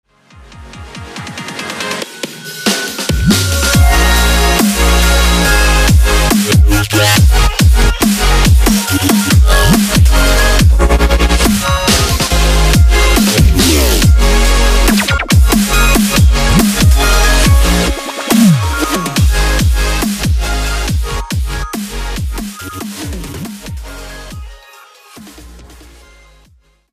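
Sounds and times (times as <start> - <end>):
melodic dubstep music: 0.7 - 26.4.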